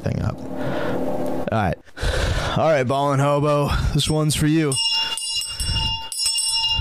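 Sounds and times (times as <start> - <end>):
speech: 0.0 - 0.8, 1.5 - 2.0, 2.6 - 4.9
bell being rung and shaken: 4.0 - 6.7.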